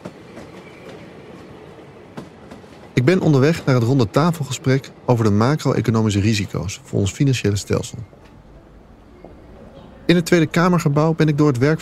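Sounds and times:
train wheels clacking over track joints: 0:00.0 - 0:04.8
train interior rumble rolling along the rails: 0:00.0 - 0:11.8
speech: 0:03.0 - 0:08.3, 0:10.1 - 0:11.8.

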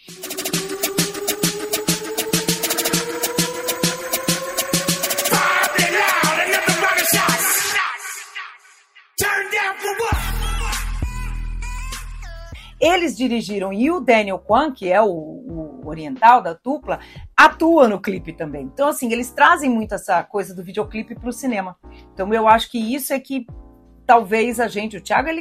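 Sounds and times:
electronic dance track with pounding beat, synth build-up and bass drop: 0:00.0 - 0:12.4
speech: 0:13.2 - 0:25.3.

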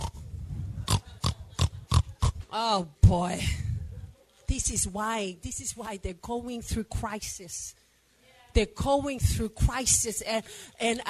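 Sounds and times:
pig grunting and oinking: 0:00.0 - 0:00.2, 0:00.9 - 0:02.4
speech: 0:02.5 - 0:03.6, 0:04.5 - 0:07.8, 0:08.5 - 0:11.0.

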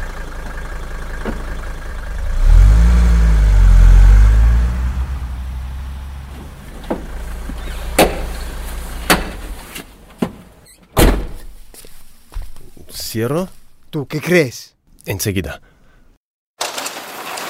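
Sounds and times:
warehouse door opening deep low rumble: 0:01.8 - 0:09.5
speech: 0:13.2 - 0:15.7.

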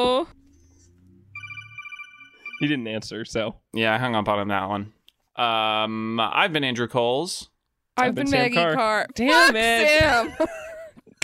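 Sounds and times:
phone ringtone for an incoming call: 0:01.3 - 0:02.9
speech: 0:02.6 - 0:10.6.

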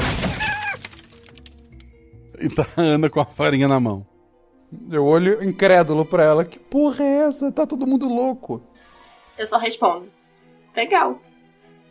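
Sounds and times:
wooden chair smashing against wall and splintering: 0:00.0 - 0:01.7
scattered wooden chair pieces clattering: 0:00.0 - 0:01.9
speech: 0:02.4 - 0:04.1, 0:04.7 - 0:10.2, 0:10.8 - 0:11.3.

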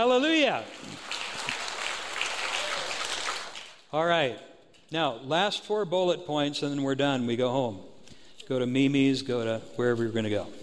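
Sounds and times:
speech: 0:00.0 - 0:01.0, 0:03.9 - 0:07.9, 0:08.5 - 0:10.6
crowd applauding: 0:00.6 - 0:03.8.

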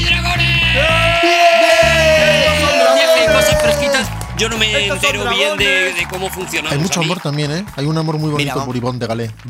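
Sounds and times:
rhythmic musical backing: 0:00.0 - 0:09.4
person shouting: 0:00.4 - 0:04.1
speech: 0:04.4 - 0:09.4.

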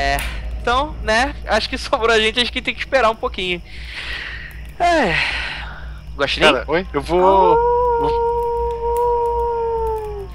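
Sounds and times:
speech: 0:00.1 - 0:05.6, 0:06.2 - 0:08.3
coyote howling: 0:06.4 - 0:10.3.

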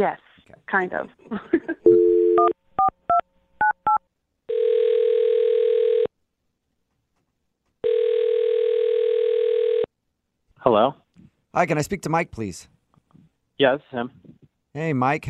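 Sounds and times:
speech: 0:00.0 - 0:01.7, 0:10.6 - 0:11.0, 0:11.6 - 0:12.8, 0:13.6 - 0:15.2
phone dial tone: 0:01.9 - 0:03.2, 0:03.8 - 0:06.1, 0:07.8 - 0:09.9.

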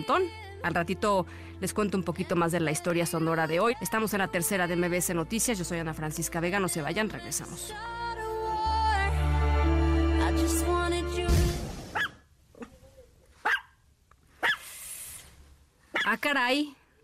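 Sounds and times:
speech: 0:00.0 - 0:08.2, 0:16.1 - 0:16.8
loud burst of sustained tonal music: 0:08.4 - 0:11.7
small dog yipping: 0:12.0 - 0:12.2, 0:13.4 - 0:13.8, 0:14.4 - 0:14.6, 0:15.9 - 0:16.2.

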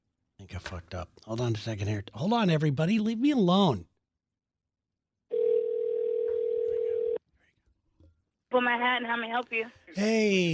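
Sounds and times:
speech: 0:00.5 - 0:03.9, 0:08.6 - 0:10.5
telephone dial tone on speakerphone: 0:05.3 - 0:07.2.

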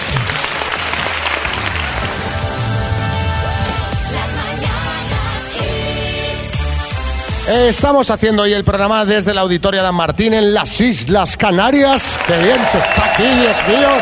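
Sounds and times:
audience clapping: 0:00.0 - 0:03.0, 0:11.9 - 0:14.0
music playing: 0:00.0 - 0:14.0
speech: 0:07.5 - 0:14.0.

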